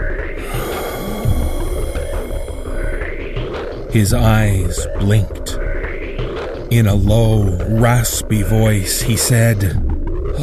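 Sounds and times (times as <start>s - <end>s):
man gasping raspily: 0.4s - 2.9s
speech: 3.9s - 5.6s, 6.7s - 10.4s.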